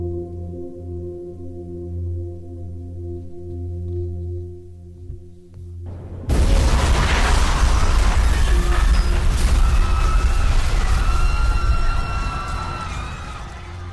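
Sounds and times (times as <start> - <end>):
loud explosion with deep sustained rumbling roar: 5.9 - 13.9.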